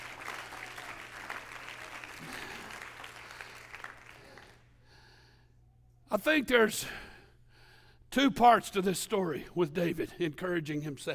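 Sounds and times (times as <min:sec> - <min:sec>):
audience clapping hands in worship: 0:00.0 - 0:04.7
speech: 0:06.1 - 0:07.0, 0:08.2 - 0:11.1.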